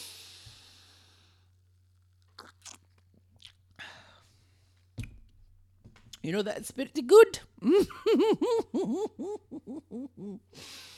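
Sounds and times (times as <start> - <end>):
crunchy chewing of a glitter-topped treat: 2.2 - 3.6
speech: 6.2 - 10.7
laughter: 7.7 - 10.4.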